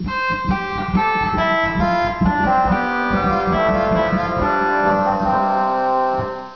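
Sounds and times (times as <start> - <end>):
organ Hautbois 8 stop: 0.0 - 6.5.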